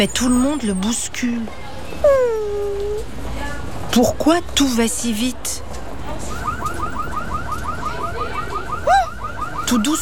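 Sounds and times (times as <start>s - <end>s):
speech: 0.0s - 2.4s, 3.9s - 5.7s, 9.7s - 10.0s
street noise: 0.0s - 10.0s
car alarm wailing in a rising chirp pattern: 6.4s - 10.0s.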